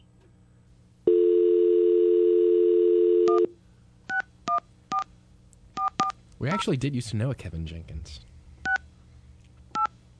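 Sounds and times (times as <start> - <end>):
telephone dial tone: 1.1 - 3.5
telephone keypad beeps: 5.8 - 6.1, 9.7 - 9.9
speech: 6.4 - 8.3.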